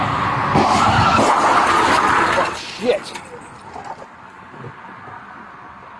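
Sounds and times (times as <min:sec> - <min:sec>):
car tires skidding with a harsh roar: 0:00.2 - 0:05.1
car ramming a police cruiser during a traffic stop in Fairview Heights: 0:00.5 - 0:04.1.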